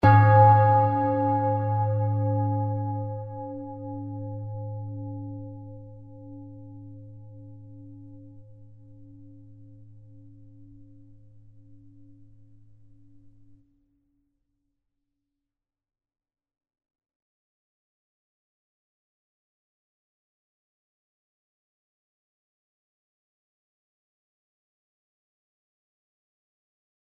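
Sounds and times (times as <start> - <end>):
bell: 0.0 - 13.5.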